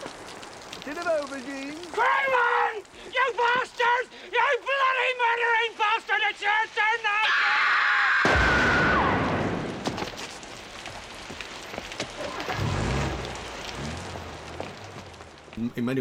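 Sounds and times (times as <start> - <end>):
steady rain falling: 0.0 - 16.0
speech: 0.9 - 8.0, 15.7 - 16.0
low rumbles: 12.1 - 16.0.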